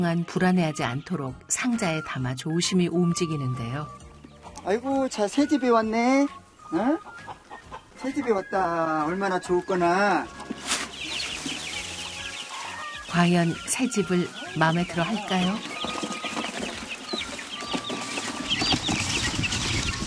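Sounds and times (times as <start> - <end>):
speech: 0.0 - 4.0, 4.6 - 7.4, 8.0 - 10.7, 13.1 - 16.0
many chicks peeping in a new coop: 6.4 - 20.0.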